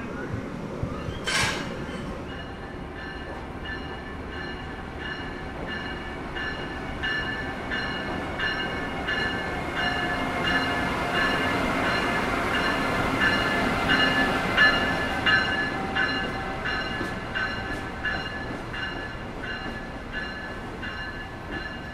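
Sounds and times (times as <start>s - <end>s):
electric locomotive rumbling: 0.0s - 21.9s
sharp metallic clank of locomotive disconnecting from train: 1.2s - 2.0s.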